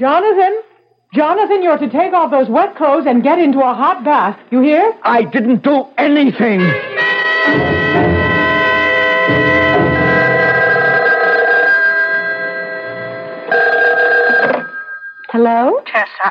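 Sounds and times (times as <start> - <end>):
speech: 0.0 - 7.7, 15.4 - 16.2
telephone bell ringing: 7.0 - 15.5.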